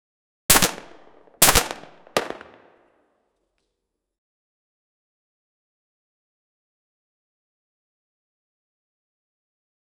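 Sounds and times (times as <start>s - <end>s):
pistol shots in a room: 0.5s - 2.8s.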